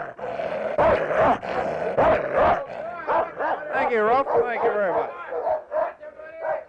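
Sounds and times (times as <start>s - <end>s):
little Moroccan dog barking: 0.8s - 1.4s, 2.0s - 6.6s
speech: 3.9s - 5.5s.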